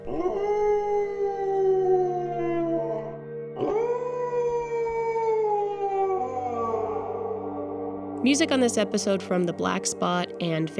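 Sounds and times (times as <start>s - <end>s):
eerie ghoulish howls sliding downward in pitch: 0.0s - 8.2s
speech: 8.2s - 10.7s.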